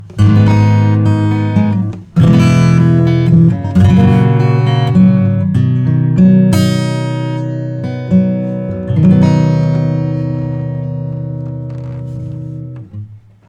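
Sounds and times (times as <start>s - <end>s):
punchy acoustic guitar: 0.0s - 13.4s.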